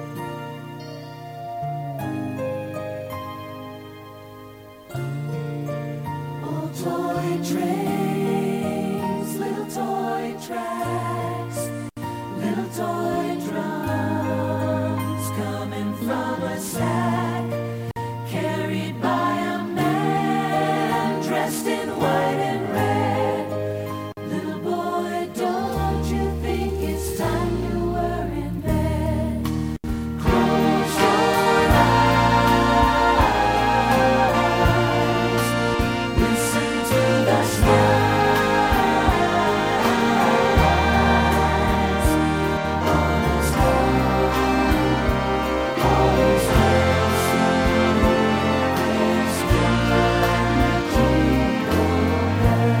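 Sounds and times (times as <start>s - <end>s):
flute: 0.7s - 4.0s, 30.2s - 52.7s
vocals: 6.0s - 52.7s
old toy train horns: 30.3s - 52.4s.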